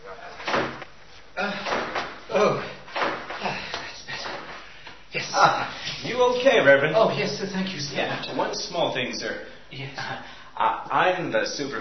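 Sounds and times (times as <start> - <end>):
revolving door bumping into someone: 0.4 - 4.7
speech: 6.2 - 11.7.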